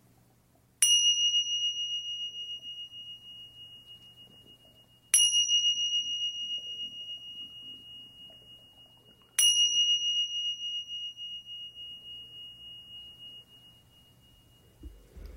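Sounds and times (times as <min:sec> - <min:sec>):
faint low hum: 0:00.0 - 0:15.3
meditation bell strikes: 0:00.8 - 0:15.3.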